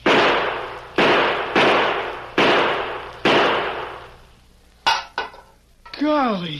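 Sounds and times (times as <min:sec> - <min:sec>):
gunshots fired at a tin can on the ground: 0:00.0 - 0:04.2.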